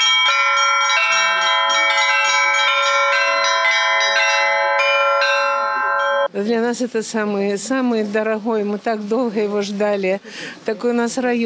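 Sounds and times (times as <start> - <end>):
church bells pealing from a bell tower calling worshippers to service: 0.0 - 6.3
speech: 6.3 - 11.4.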